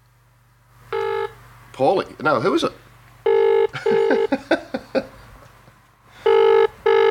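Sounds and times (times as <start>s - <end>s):
outgoing call's ringback tone: 0.9s - 1.4s, 3.3s - 4.3s, 6.2s - 7.0s
speech: 1.8s - 2.8s
laughter: 3.7s - 5.5s.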